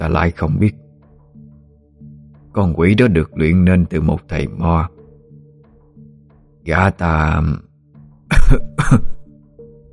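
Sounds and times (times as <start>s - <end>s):
speech: 0.0s - 0.8s, 2.6s - 5.0s, 6.6s - 7.6s, 8.5s - 9.1s
man coughing harshly: 8.3s - 9.3s.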